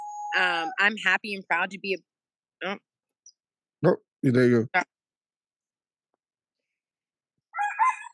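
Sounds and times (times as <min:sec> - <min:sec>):
speech: 0:00.3 - 0:02.9, 0:03.8 - 0:05.0
rooster crowing: 0:07.6 - 0:08.1.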